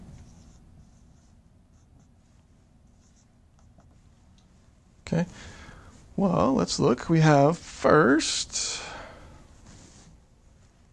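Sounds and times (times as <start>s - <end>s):
scratchy writing strokes during a lecture: 0.0s - 4.1s
low hum: 0.0s - 10.9s
speech: 5.1s - 5.6s, 6.2s - 8.9s.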